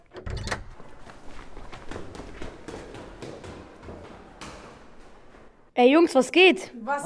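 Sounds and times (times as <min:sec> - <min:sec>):
front door opening with heavy thump and latch clatter: 0:00.0 - 0:01.1
scattered knocks and shuffles: 0:00.0 - 0:05.8
footsteps: 0:00.6 - 0:05.8
speech: 0:05.8 - 0:07.0.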